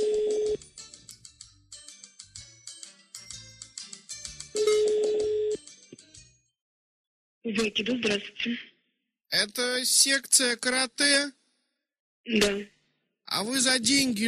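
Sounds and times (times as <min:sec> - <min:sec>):
telephone call ringing with electronic tones and beeps: 0:00.0 - 0:00.6, 0:04.5 - 0:05.6
speech: 0:07.5 - 0:08.7, 0:09.3 - 0:11.4, 0:12.2 - 0:14.2.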